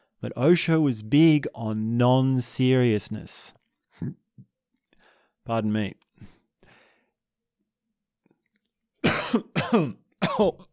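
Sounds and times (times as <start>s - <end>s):
speech: 0.2s - 4.2s, 5.5s - 6.3s, 9.3s - 10.7s
person coughing: 9.0s - 10.7s.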